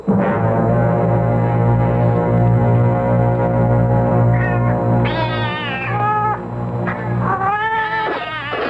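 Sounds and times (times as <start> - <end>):
steady low droning tone: 0.0 - 7.4
several cats meowing: 4.3 - 6.4, 7.1 - 8.6.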